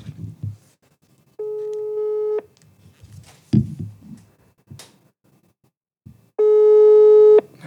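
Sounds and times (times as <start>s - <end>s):
electronic ringback tone of an outgoing phone call: 1.4s - 2.4s, 6.4s - 7.4s.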